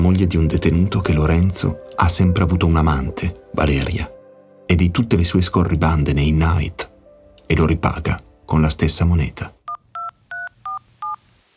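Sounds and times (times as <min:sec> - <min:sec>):
speech: 0:00.0 - 0:06.9, 0:07.5 - 0:09.6
touch-tone beeps from a telephone keypad dialing a number: 0:09.7 - 0:11.2.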